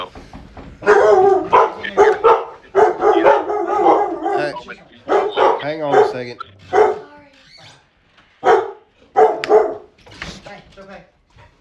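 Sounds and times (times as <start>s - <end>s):
someone knocking on the door: 0.0s - 1.7s
dogs barking: 0.7s - 10.0s
speech: 6.2s - 6.5s.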